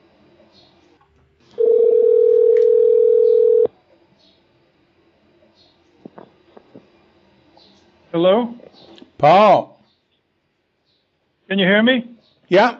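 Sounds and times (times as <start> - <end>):
telephone dial tone as a call is placed: 1.6 - 3.7
speech: 8.2 - 9.7, 11.5 - 12.7.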